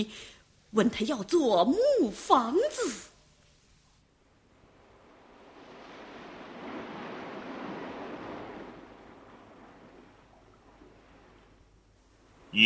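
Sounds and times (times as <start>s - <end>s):
speech: 0.0s - 3.1s
sea waves surging: 4.3s - 12.6s.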